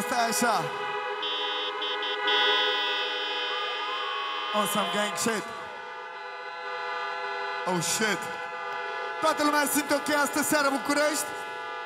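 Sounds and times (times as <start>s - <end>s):
horns honking at a concert in Bucharest: 0.0s - 11.8s
speech: 0.2s - 0.8s, 2.2s - 2.7s, 4.5s - 5.6s, 7.6s - 8.4s, 9.2s - 11.4s.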